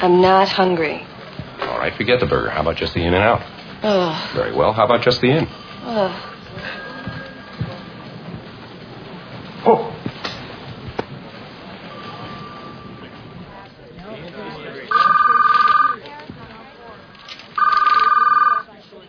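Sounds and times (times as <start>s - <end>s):
speech: 0.0s - 1.1s, 1.7s - 6.8s
telephone ringing with electronic trill: 14.8s - 16.0s, 17.1s - 18.7s.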